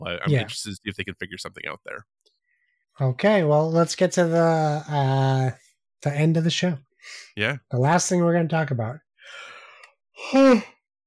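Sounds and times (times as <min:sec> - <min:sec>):
speech: 0:00.0 - 0:02.3, 0:03.0 - 0:09.5, 0:10.2 - 0:10.8
person yawning: 0:10.2 - 0:10.7.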